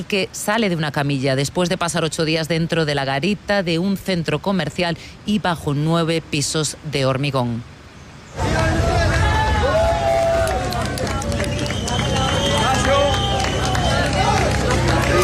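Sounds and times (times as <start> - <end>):
speech: 0.0 - 7.7
large crowd applauding at rescue: 8.4 - 15.2.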